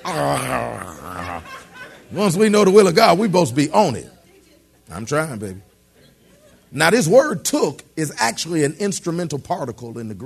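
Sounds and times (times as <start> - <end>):
person's voice imitating a guard dog's growl: 0.0 - 1.6
laughter: 0.0 - 2.5
speech: 0.0 - 4.1, 4.9 - 5.7, 6.7 - 10.2.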